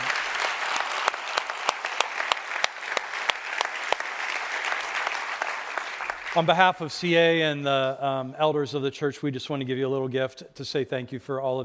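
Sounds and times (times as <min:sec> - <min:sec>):
crowd applauding in a large room: 0:00.0 - 0:06.8
speech: 0:06.3 - 0:11.6.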